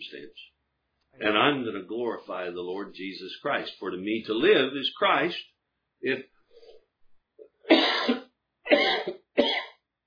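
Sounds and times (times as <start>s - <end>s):
speech: 0.0s - 6.3s
person coughing from allergies: 7.7s - 9.8s.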